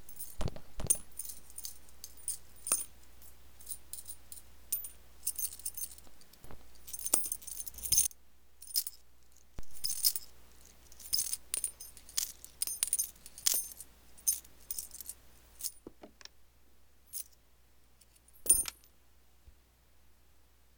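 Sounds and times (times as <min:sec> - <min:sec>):
coins clinking: 0:00.0 - 0:09.0, 0:09.6 - 0:15.8, 0:18.4 - 0:18.9.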